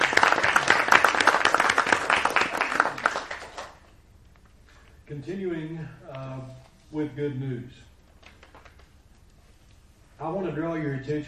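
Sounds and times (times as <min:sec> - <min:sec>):
crowd clapping: 0:00.0 - 0:03.9
speech: 0:05.3 - 0:07.9, 0:10.2 - 0:11.2.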